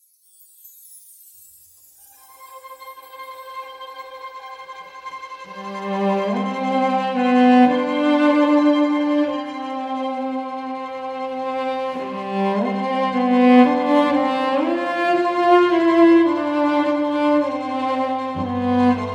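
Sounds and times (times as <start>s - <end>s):
professional string ensemble playing: 2.2s - 19.1s.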